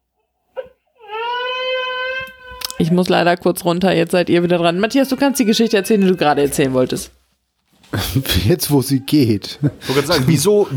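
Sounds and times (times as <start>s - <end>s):
baby crying: 0.6s - 2.9s, 4.4s - 6.8s
speech: 2.8s - 7.2s, 7.9s - 10.7s
laughter: 9.4s - 10.7s.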